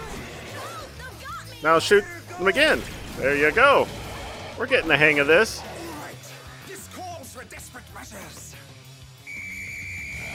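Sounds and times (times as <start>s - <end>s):
speech: 1.6s - 4.0s, 4.6s - 5.7s
dog whistle blown: 9.3s - 10.3s.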